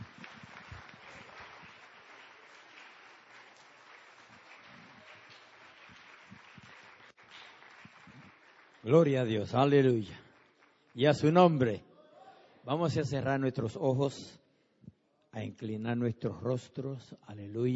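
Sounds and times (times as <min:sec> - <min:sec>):
congregation applauding: 0:00.0 - 0:11.4
speech: 0:08.8 - 0:10.2, 0:11.0 - 0:11.9, 0:12.7 - 0:14.4, 0:15.4 - 0:17.7.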